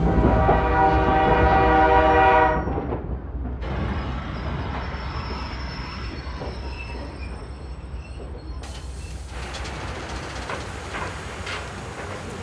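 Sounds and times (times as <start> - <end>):
steam train horn: 0.0 - 2.8
rumble and clatter of a train arriving at a train station in Sarajevo: 0.0 - 12.4.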